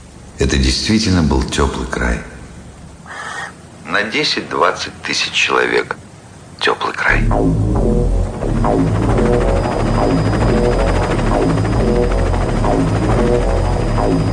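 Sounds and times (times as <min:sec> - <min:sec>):
speech: 0:00.4 - 0:02.3, 0:03.9 - 0:06.0, 0:06.6 - 0:14.3
helicopter circling overhead with rotor chopping: 0:07.3 - 0:14.3.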